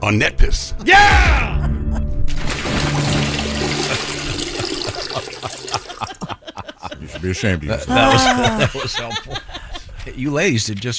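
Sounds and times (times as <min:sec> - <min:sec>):
speech: 0:00.0 - 0:01.6, 0:07.2 - 0:09.4, 0:10.0 - 0:10.9
toilet flushing with gurgling rush of water: 0:02.3 - 0:06.1
laughter: 0:03.7 - 0:10.2.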